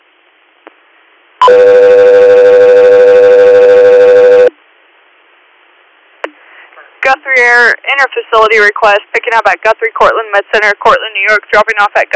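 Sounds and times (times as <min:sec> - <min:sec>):
loud electronic dispatch alert tones: 0:01.4 - 0:04.5
speech: 0:01.5 - 0:01.8, 0:07.4 - 0:12.1.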